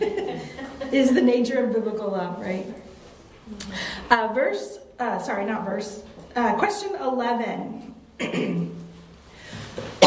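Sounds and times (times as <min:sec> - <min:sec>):
laughter: 0:00.0 - 0:01.3
speech: 0:00.9 - 0:02.8, 0:03.5 - 0:08.7
person coughing: 0:08.2 - 0:08.8.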